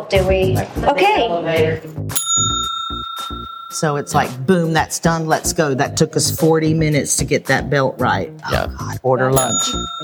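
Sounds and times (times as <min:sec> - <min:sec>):
speech: 0:00.0 - 0:02.6, 0:03.7 - 0:10.0
small hotel desk bell ding: 0:02.2 - 0:05.1, 0:09.4 - 0:10.0.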